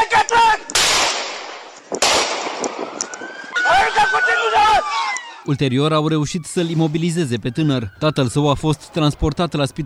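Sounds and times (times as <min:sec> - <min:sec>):
warning gunshots fired into the air: 0:00.7 - 0:03.0
siren wailing: 0:02.8 - 0:09.8
speech: 0:05.5 - 0:09.8.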